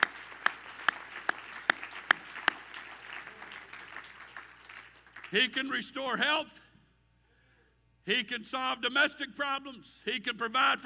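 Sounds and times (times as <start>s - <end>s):
crowd clapping hands in unison: 0.0s - 5.6s
speech: 5.3s - 6.7s, 8.0s - 10.8s.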